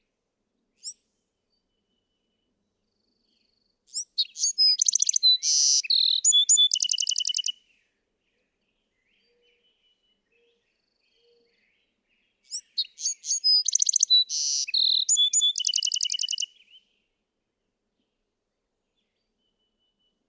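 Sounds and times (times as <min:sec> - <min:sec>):
Bewick's wren song: 0:03.9 - 0:07.6, 0:11.2 - 0:16.8.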